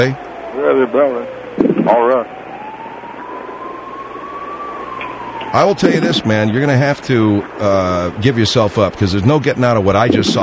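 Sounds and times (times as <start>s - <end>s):
speech: 0.0s - 2.4s, 5.5s - 10.4s
police siren wailing: 0.0s - 6.9s, 10.0s - 10.4s
constant rumble of traffic-like noise: 0.0s - 10.4s.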